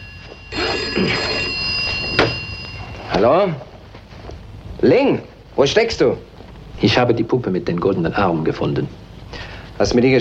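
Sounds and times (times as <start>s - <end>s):
telephone ringing in an apartment: 0.0s - 4.3s
hiss: 0.0s - 10.2s
speech: 3.2s - 3.7s, 4.8s - 10.2s.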